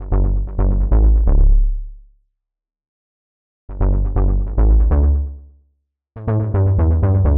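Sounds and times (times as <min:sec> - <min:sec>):
funk bass loop: 0:00.0 - 0:01.4, 0:03.7 - 0:05.3, 0:06.2 - 0:07.3.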